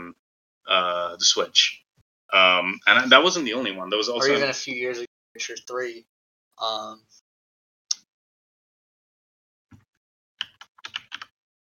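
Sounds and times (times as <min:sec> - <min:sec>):
speech: 0:00.7 - 0:07.2
typing on a computer keyboard: 0:10.4 - 0:11.3.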